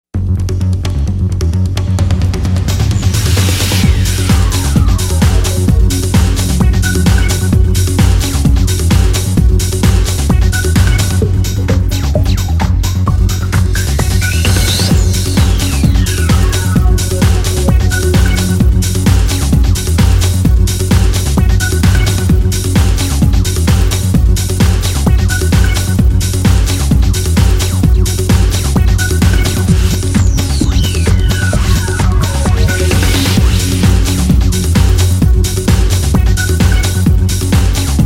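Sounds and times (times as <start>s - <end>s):
bass drum: 0.1s - 38.0s.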